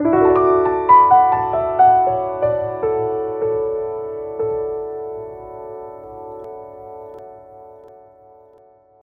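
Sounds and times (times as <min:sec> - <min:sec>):
classic piano SMS tone: 0:00.0 - 0:09.0.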